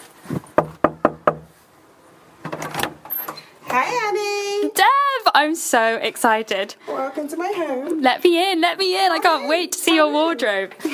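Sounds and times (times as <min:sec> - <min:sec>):
knocking on a wooden front door of a house: 0:00.6 - 0:01.5
speech: 0:03.8 - 0:10.9.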